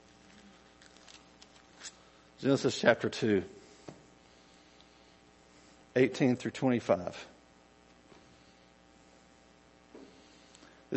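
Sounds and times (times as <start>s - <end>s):
paper pages being flipped: 0.2s - 2.0s
speech: 2.4s - 3.6s, 6.0s - 7.3s.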